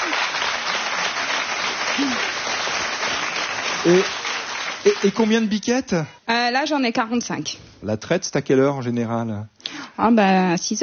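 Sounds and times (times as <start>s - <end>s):
audience applause: 0.0s - 5.6s
speech: 2.0s - 2.3s, 3.8s - 4.2s, 4.8s - 10.8s.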